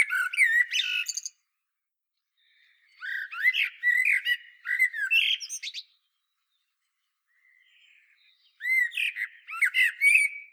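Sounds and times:
common blackbird Turdus merula singing: 0.0s - 1.4s, 2.4s - 6.0s, 7.3s - 10.5s.

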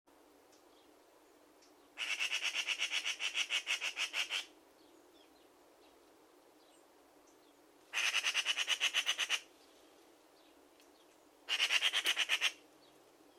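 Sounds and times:
faint background hiss: 0.1s - 13.3s
Eurasian magpie Pica pica chattering: 2.0s - 4.5s, 7.9s - 9.5s, 11.5s - 12.6s.

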